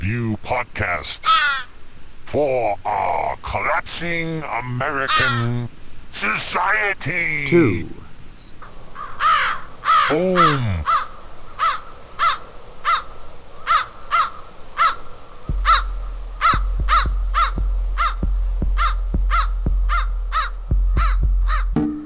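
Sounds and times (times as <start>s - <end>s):
speech: 0.0s - 1.4s, 2.3s - 8.0s, 10.1s - 11.0s
blue jay calling: 0.0s - 1.9s, 3.6s - 21.8s
deep steady hum: 15.5s - 21.8s
soft rhythmic thumps: 15.5s - 22.0s.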